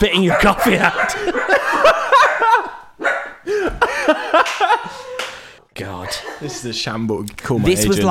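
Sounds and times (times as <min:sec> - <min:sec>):
speech: 0:00.0 - 0:01.9, 0:06.4 - 0:08.0
dog barking: 0:00.1 - 0:03.5, 0:05.9 - 0:06.8
laughter: 0:00.2 - 0:07.0.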